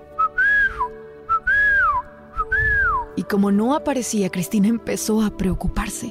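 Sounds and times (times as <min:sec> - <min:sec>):
person whistling loudly to call a pet parrot: 0:00.2 - 0:03.2
speech: 0:03.2 - 0:06.0.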